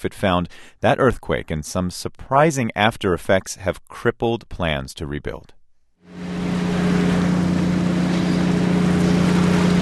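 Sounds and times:
speech: 0.0s - 6.3s
broad rushing noise: 6.1s - 9.8s
fishing boat engines droning at the port in Kesenuma: 6.1s - 9.8s.

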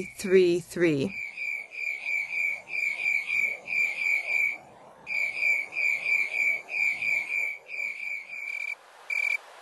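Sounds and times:
speech: 0.0s - 1.2s
slowed-down chirps of the Western tree cricket Acanthus rileyi: 1.1s - 9.4s.

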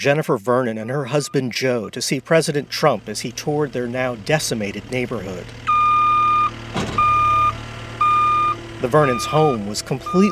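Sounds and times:
speech: 0.0s - 5.8s, 8.8s - 10.3s
skid steer loader reversing beeps while clearing debris of a destroyed house: 0.8s - 1.5s, 5.7s - 10.3s
low skid steer loader engine hum: 0.8s - 10.3s.

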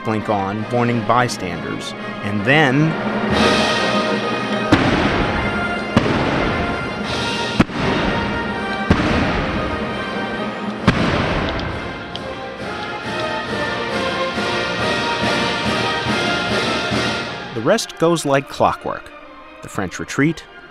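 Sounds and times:
loud full orchestra playing: 0.0s - 20.6s
speech: 0.1s - 4.2s, 17.7s - 20.6s
sharp booming concert cannon blasts: 3.0s - 12.2s.

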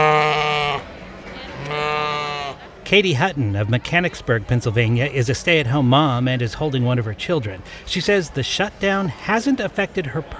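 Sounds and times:
farm animals bleating from barn pens at a livestock auction: 0.0s - 0.9s, 1.6s - 2.6s
speech: 2.9s - 10.3s.

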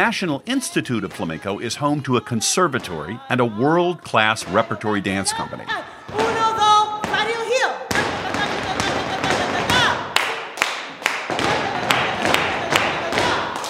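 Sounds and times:
speech: 0.0s - 6.2s
flamenco heel and toe stamps from an instructor demonstrating: 6.1s - 13.6s.

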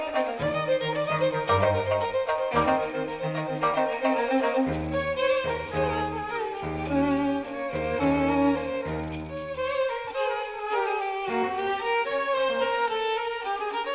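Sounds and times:
bells played in a musical passage: 0.0s - 13.8s.

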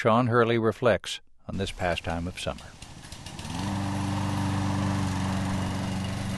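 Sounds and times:
speech: 0.0s - 2.8s
lawn mower engine starting and running: 1.5s - 6.3s.

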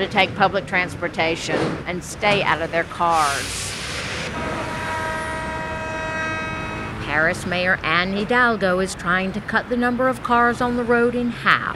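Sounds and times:
speech: 0.0s - 3.8s, 7.1s - 11.7s
metro trains rumbling at the République station of the Paris Metro: 2.5s - 8.4s
high whining tones: 3.8s - 7.2s.

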